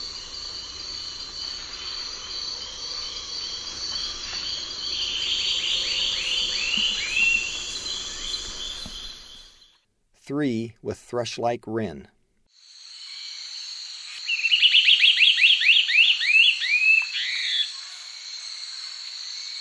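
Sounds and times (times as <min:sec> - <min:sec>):
steady high insect drone: 0:00.0 - 0:09.8, 0:12.5 - 0:19.5
lunulated antbird calling in the eastern lowlands of South America: 0:04.1 - 0:09.6, 0:14.3 - 0:17.6
speech: 0:10.3 - 0:12.2.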